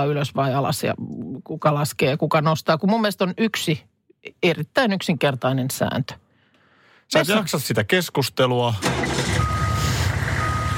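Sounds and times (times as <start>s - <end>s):
speech: 0.0s - 6.2s, 7.1s - 9.6s
deep constant truck engine rumble: 8.8s - 10.7s
truck reversing alarm beeps: 9.2s - 10.7s.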